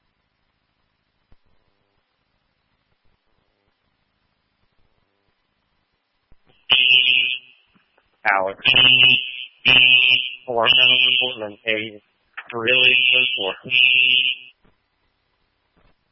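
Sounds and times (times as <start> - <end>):
fire alarm horns blaring: 6.7 - 7.6, 8.6 - 14.6
person talking: 8.3 - 9.2, 10.5 - 13.8.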